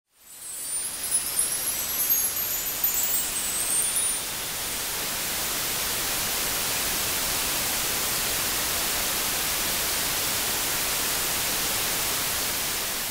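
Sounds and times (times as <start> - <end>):
wind chimes: 0.1 - 5.3
white noise: 0.2 - 13.0.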